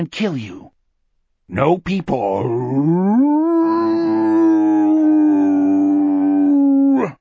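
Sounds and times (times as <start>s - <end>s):
speech: 0.0s - 0.7s, 1.5s - 3.6s
long liquid wolf-like howl: 2.7s - 7.1s.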